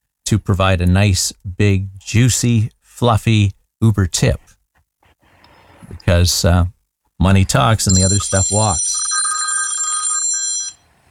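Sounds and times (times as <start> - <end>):
speech: 0.3 - 4.5, 6.0 - 9.0
telephone ringing in bright high electronic tones: 7.9 - 11.0.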